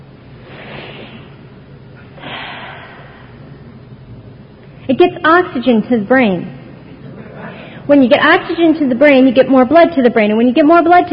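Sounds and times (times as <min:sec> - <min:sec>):
big deep breaths taken on request: 0:00.4 - 0:03.8, 0:07.2 - 0:07.9
speech: 0:04.9 - 0:06.6, 0:07.9 - 0:11.1.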